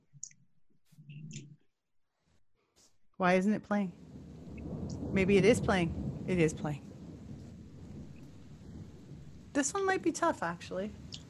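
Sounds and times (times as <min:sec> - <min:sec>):
speech: 0:03.2 - 0:04.0, 0:05.1 - 0:06.9, 0:09.6 - 0:11.1
low continuous rumble of thunder in a played song: 0:03.3 - 0:11.2
soft rain-like hiss: 0:03.9 - 0:11.2.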